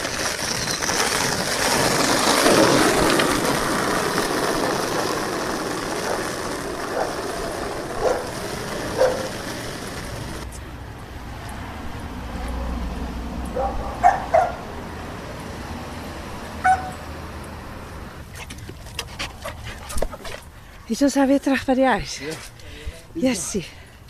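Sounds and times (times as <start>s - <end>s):
outdoor noise: 0.0s - 24.0s
dog barking and yipping: 6.9s - 7.2s, 8.0s - 8.3s, 9.0s - 9.3s, 13.5s - 14.6s, 16.6s - 17.0s
dog panting: 18.9s - 20.5s
speech: 21.0s - 22.5s, 23.2s - 23.8s.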